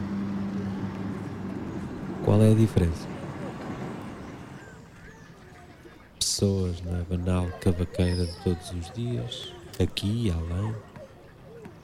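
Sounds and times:
cars rolling along a cobblestone road: 0.0s - 6.2s
droning engine rumble and low hum: 0.0s - 7.1s
speech: 2.3s - 3.1s, 6.4s - 10.9s.

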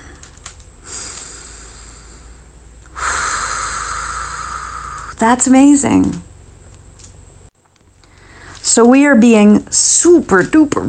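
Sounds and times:
person breathing in deeply: 0.0s - 5.1s, 8.0s - 8.6s
speech: 5.2s - 6.2s, 8.8s - 10.8s.

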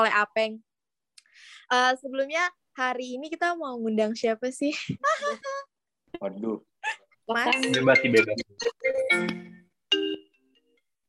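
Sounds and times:
speech: 0.0s - 0.7s, 1.4s - 9.6s
laughter: 5.0s - 5.7s
phone ringtone ringing: 7.4s - 10.8s.

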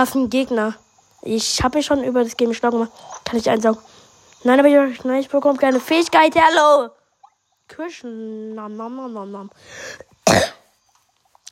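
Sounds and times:
speech: 0.0s - 7.0s, 7.7s - 10.5s
person coughing: 10.3s - 10.6s.

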